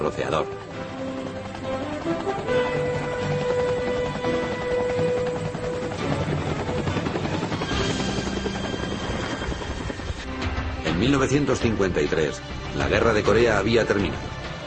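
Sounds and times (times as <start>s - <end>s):
speech: 0.0s - 1.0s, 11.0s - 14.4s
Bell 47 helicopter rotor chopping: 0.0s - 14.6s.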